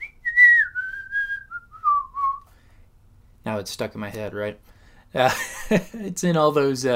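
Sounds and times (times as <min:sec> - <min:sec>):
person whistling a familiar classic tune: 0:00.0 - 0:02.6
speech: 0:03.5 - 0:06.9.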